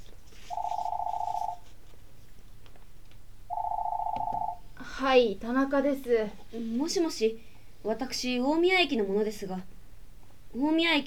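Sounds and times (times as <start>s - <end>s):
faint low hum: 0.0s - 11.0s
home telephone ringing with a clear electronic ring: 0.5s - 1.7s, 3.5s - 4.6s
speech: 5.0s - 9.7s, 10.5s - 11.0s.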